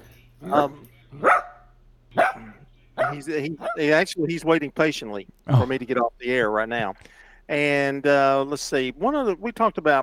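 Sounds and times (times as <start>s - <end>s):
faint low hum: 0.0s - 10.0s
speech: 0.4s - 1.4s, 3.1s - 10.0s
dog barking: 0.4s - 3.9s.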